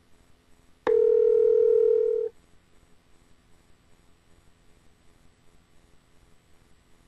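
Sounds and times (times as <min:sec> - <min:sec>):
electronic telephone dialing tone from a smartphone: 0:00.9 - 0:02.3.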